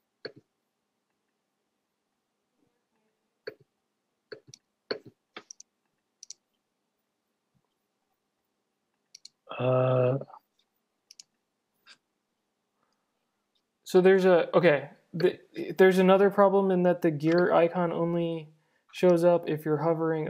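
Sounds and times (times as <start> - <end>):
computer mouse clicks: 0.2 - 0.5, 4.3 - 6.4, 9.0 - 9.4, 10.6 - 12.0
speech: 9.6 - 10.3, 13.9 - 20.2.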